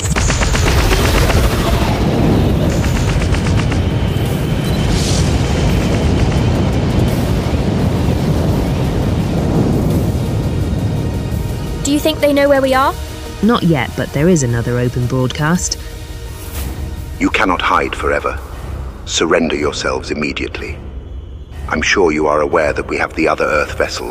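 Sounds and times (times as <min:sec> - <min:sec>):
spaceship weapons firing in a rapid barrage: 0:00.0 - 0:04.4
booming explosions: 0:00.0 - 0:15.6
speech: 0:12.0 - 0:15.9, 0:17.2 - 0:18.5, 0:19.1 - 0:20.8, 0:21.7 - 0:24.0.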